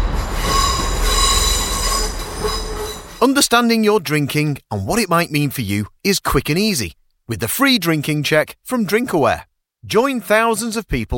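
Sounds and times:
train rolling into a station with a low rumble: 0:00.0 - 0:03.2
train wheels letting out a high metallic squeal: 0:00.0 - 0:03.2
speech: 0:03.2 - 0:11.1.

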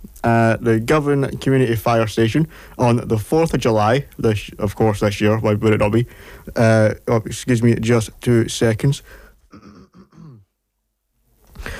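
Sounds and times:
speech: 0:00.2 - 0:09.7
person in a harsh throaty coughing fit: 0:09.5 - 0:10.5.

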